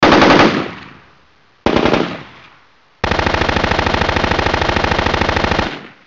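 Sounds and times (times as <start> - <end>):
AK-47 assault rifle gunshots: 0.0 - 1.0, 1.7 - 2.4, 3.0 - 6.0.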